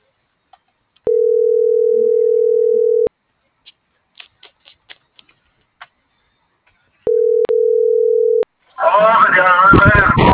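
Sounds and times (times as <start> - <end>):
telephone dial tone while calling the operator: 1.1 - 3.1, 7.1 - 8.5
person talking: 8.8 - 10.3.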